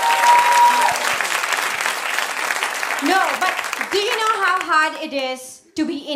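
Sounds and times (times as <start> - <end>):
live audience applause in a crowded room: 0.0 - 4.8
speech: 4.0 - 6.1.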